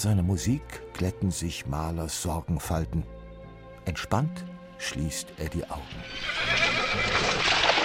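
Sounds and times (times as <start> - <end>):
speech: 0.0 - 3.2, 3.8 - 7.6
horse whinnying: 5.9 - 7.7.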